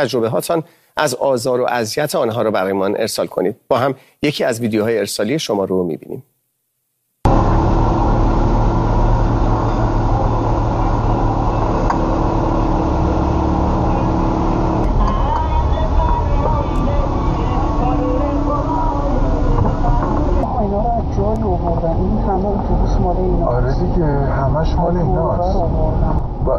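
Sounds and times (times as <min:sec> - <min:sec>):
speech: 0:00.0 - 0:06.3
deep continuous engine drone of buses on a city street in Iran: 0:07.3 - 0:26.5
faint indistinct voices on a city street in Iran: 0:07.3 - 0:26.5
heavy traffic rumbling on a city street in Iran: 0:07.3 - 0:26.5.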